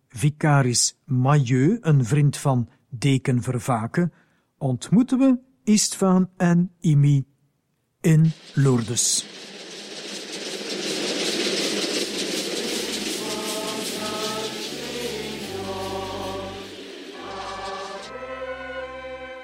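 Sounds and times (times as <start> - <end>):
speech: 0.2 - 7.3, 8.0 - 9.6
train rolling on rails: 8.1 - 18.7.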